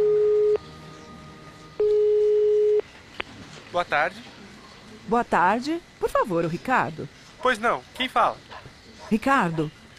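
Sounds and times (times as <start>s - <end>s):
telephone ringback tone while calling a company's phone number: 0.0s - 0.6s, 1.8s - 2.8s
speech: 3.8s - 4.4s, 5.1s - 8.5s, 9.1s - 9.8s.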